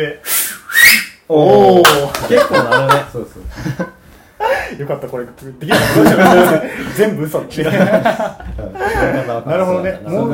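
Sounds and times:
speech: 0.0 - 0.3, 1.3 - 3.9, 4.7 - 10.3
shrill breathy finger whistle: 0.2 - 1.2
laughter: 2.0 - 4.6, 5.6 - 9.5.

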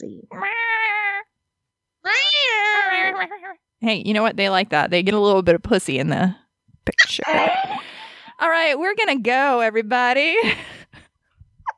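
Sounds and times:
cat meowing and yowling: 0.3 - 1.3, 2.0 - 3.6
speech: 3.8 - 7.7, 8.4 - 10.7.

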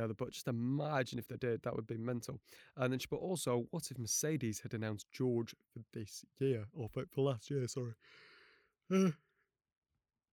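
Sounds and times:
speech: 0.0 - 9.2
loud voiced yawn: 8.9 - 9.2.

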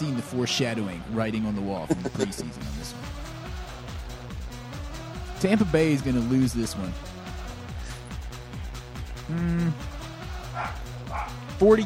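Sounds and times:
speech: 0.3 - 3.1, 5.4 - 7.1, 9.3 - 9.9, 10.6 - 11.8
laughter: 1.8 - 2.8
dog barking and yipping: 10.4 - 11.5.

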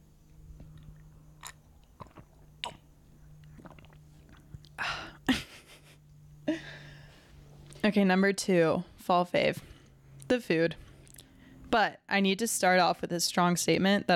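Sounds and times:
slurping sips of tea: 3.4 - 4.6
speech: 7.9 - 9.7, 10.3 - 10.8, 11.7 - 14.1.

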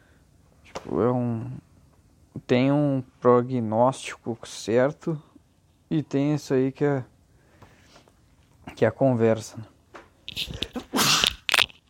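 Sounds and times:
speech: 0.9 - 1.6, 2.4 - 5.3, 5.9 - 7.1, 8.7 - 9.7, 10.4 - 10.6
loud sneeze: 10.4 - 11.4.

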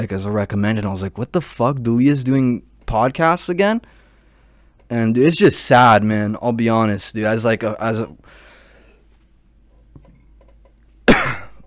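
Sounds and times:
speech: 0.0 - 4.0, 4.9 - 8.4
cough into the microphone: 11.0 - 11.6.

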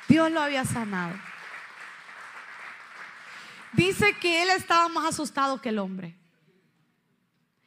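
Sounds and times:
audience clapping: 0.0 - 4.7
speech: 0.1 - 1.3, 3.7 - 6.2.

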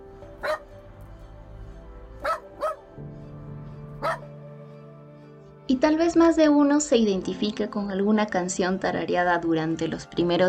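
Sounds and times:
dog barking: 0.4 - 0.7, 2.2 - 2.9, 4.0 - 4.3
speech: 5.7 - 10.4.

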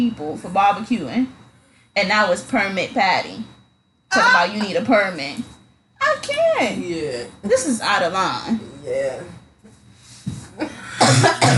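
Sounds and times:
speech: 0.0 - 1.4, 2.0 - 9.4, 10.6 - 11.5
person coughing harshly: 10.6 - 11.5.

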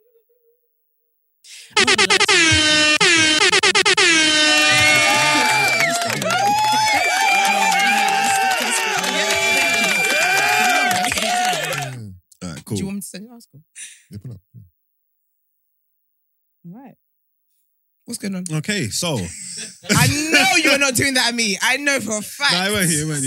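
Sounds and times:
speech: 1.4 - 2.7, 18.3 - 23.2
air horn blasts: 1.8 - 6.1
people shouting excitedly: 4.2 - 12.0
laughter: 4.5 - 12.0, 19.0 - 21.1.

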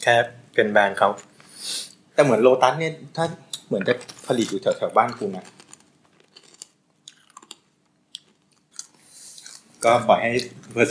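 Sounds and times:
speech: 0.0 - 5.6, 9.8 - 10.8
person chewing crunchy snack: 3.9 - 10.8.

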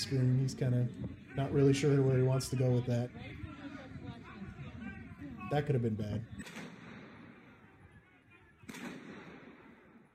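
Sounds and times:
speech: 0.0 - 3.6, 5.5 - 6.7
gunshot: 6.4 - 7.5, 8.6 - 10.1.

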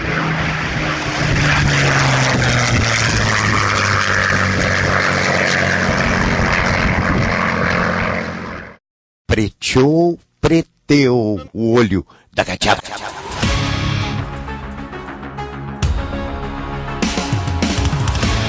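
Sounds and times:
Spitfire fighter plane Merlin engine roaring: 0.0 - 8.8, 12.9 - 15.6, 16.7 - 18.4
speech: 9.4 - 13.7.

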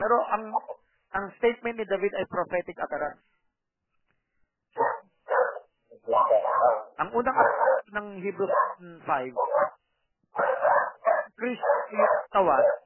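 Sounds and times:
speech: 0.0 - 3.3, 6.0 - 9.8, 11.4 - 12.8
dog barking: 4.8 - 12.8.

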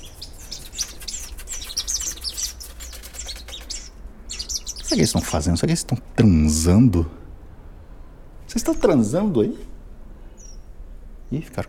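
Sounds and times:
birds' wings rustling and fluttering: 0.0 - 5.0
lively flock of small birds chirping and tweeting: 0.0 - 6.2, 8.5 - 9.4, 10.2 - 11.6
low steady hum: 0.0 - 11.6
speech: 4.9 - 7.2, 8.5 - 9.7, 11.3 - 11.6.

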